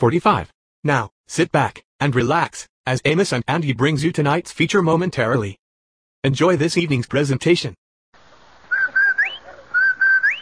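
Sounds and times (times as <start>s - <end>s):
speech: 0.0s - 5.6s, 6.2s - 7.8s
whistled advertising jingle: 8.7s - 10.3s.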